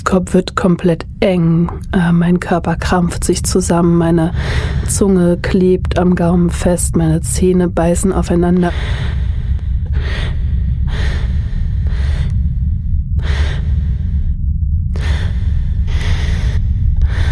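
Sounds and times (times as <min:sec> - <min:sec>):
constant low rumble: 0:00.0 - 0:17.3
speech: 0:00.1 - 0:09.2
heavy shallow breathing: 0:04.3 - 0:05.2, 0:08.5 - 0:17.3.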